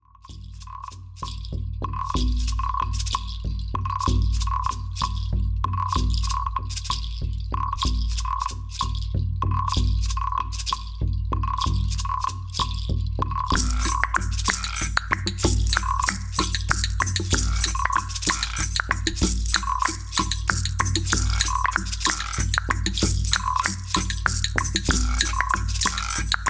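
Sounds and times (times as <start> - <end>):
small percussion: 0.1 - 26.4
shaman drum: 0.3 - 26.4.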